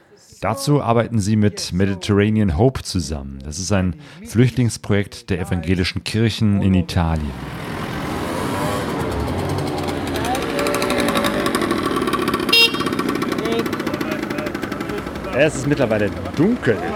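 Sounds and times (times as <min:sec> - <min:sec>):
speech: 0:00.2 - 0:07.7, 0:15.4 - 0:16.9
cars and trucks roaring past on main road in Rosarno, Italy, after dark: 0:06.9 - 0:16.9
rattling pulsing engine: 0:08.7 - 0:16.9.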